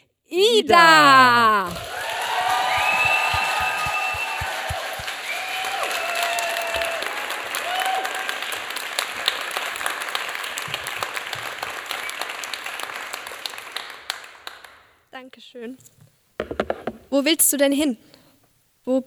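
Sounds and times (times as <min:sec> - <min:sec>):
speech: 0:00.3 - 0:01.9, 0:17.2 - 0:18.1, 0:18.9 - 0:19.0
crowd applauding: 0:00.8 - 0:14.9
cheers and whistles: 0:01.7 - 0:08.6.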